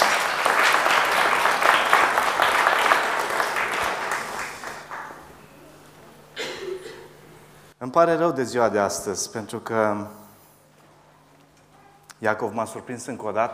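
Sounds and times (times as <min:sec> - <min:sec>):
crowd applauding: 0:00.0 - 0:05.6
speech: 0:07.9 - 0:10.2, 0:12.2 - 0:13.5.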